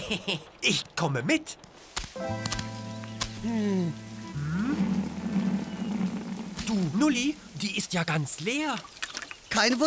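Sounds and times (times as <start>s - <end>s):
speech: 0.1s - 2.8s, 3.4s - 4.8s, 6.7s - 9.8s
heavy rain hissing: 2.9s - 8.3s.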